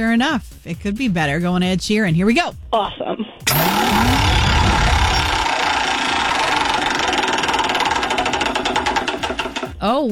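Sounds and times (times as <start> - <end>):
speech: 0.0 - 4.3, 9.8 - 10.1
prize wheel in a radio game segment spinning and clicking: 3.5 - 9.8.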